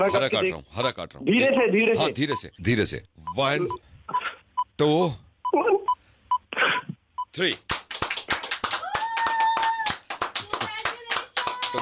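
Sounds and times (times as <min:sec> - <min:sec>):
speech: 0:00.0 - 0:03.9, 0:04.8 - 0:05.6, 0:07.4 - 0:07.8
group of people applauding with rapid overlapping hand claps: 0:07.4 - 0:11.7
people cheering: 0:08.4 - 0:11.7.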